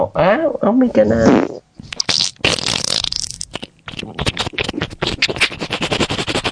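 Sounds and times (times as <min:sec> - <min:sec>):
speech: 0:00.0 - 0:01.9
long loud fart: 0:01.1 - 0:05.6.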